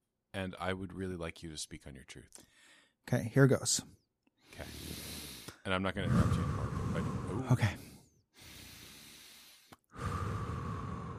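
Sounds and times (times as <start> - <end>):
speech: 0.4 - 7.8
heavy raspy breathing imitating a masked villain's respirator: 4.4 - 11.1.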